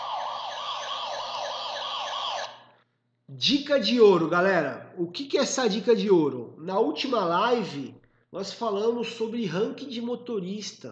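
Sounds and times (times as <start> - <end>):
siren sound effect wailing in an up-and-down sweep: 0.0 - 2.8
speech: 3.4 - 10.9.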